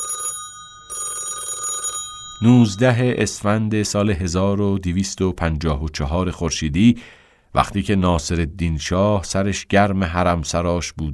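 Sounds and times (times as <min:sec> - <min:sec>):
telephone bell ringing: 0:00.0 - 0:03.2
speech: 0:02.4 - 0:11.1.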